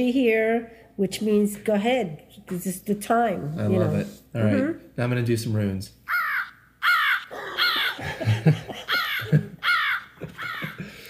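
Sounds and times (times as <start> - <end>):
speech: 0.0 - 6.1
crow cawing: 6.1 - 8.2, 8.9 - 10.9
laughter: 7.2 - 11.0.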